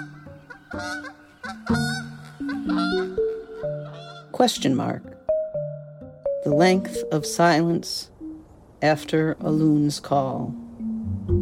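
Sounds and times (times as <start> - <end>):
wild goose honking: 0.0 - 4.9
speech: 0.8 - 1.8, 4.4 - 5.2, 6.4 - 8.1, 8.8 - 10.6.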